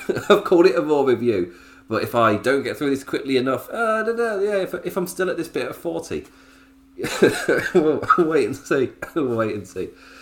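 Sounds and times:
speech: 0.1 - 10.2
harsh coughs: 7.0 - 8.4.

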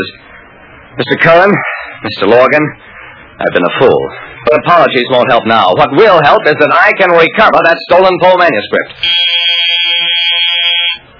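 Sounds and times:
speech: 0.0 - 0.3, 1.0 - 9.8
electric classroom buzzer blaring: 9.0 - 11.1.

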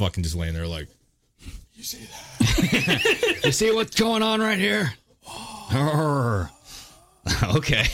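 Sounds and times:
speech: 0.0 - 6.6, 7.2 - 7.9
laughter: 2.2 - 4.0
person imitating a dying last breath with a mummy-like groan: 5.2 - 7.4.

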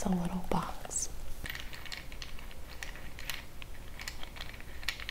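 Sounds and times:
speech: 0.1 - 0.8
small checker pieces clattering and clicking as handled: 1.5 - 5.0.

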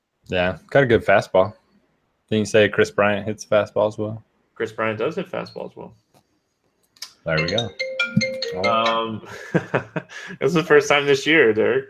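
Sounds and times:
speech: 0.3 - 1.6, 2.3 - 6.0, 7.2 - 11.8
mobile phone ringing with a short electronic ringtone melody: 7.3 - 9.3
laughter: 9.1 - 10.4.

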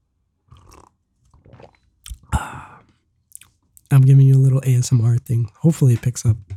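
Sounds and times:
person slurping tea: 0.5 - 2.9
person swallowing: 0.5 - 2.9
quiet mouth noises: 2.1 - 6.5
speech: 3.9 - 6.5.

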